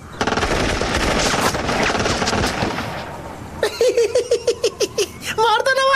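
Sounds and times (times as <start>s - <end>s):
soldiers firing sharp loud gunshots: 0.0s - 3.4s
soldiers firing rapid automatic gunfire: 0.2s - 3.2s
laughter: 3.6s - 5.4s.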